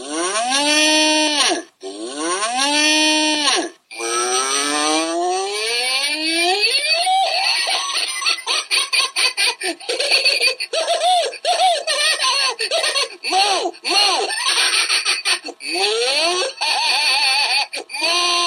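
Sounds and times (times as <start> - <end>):
cow mooing sound effect: 0.0 - 6.6
laughter: 7.2 - 18.0.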